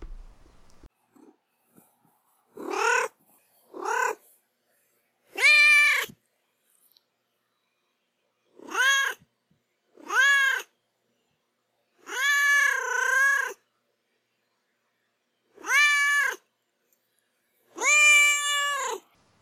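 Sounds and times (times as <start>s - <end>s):
domestic cat meowing: 2.6s - 3.1s, 3.7s - 4.2s, 5.3s - 6.1s, 8.6s - 9.2s, 10.0s - 10.7s, 12.0s - 13.6s, 15.6s - 16.4s, 17.8s - 19.0s.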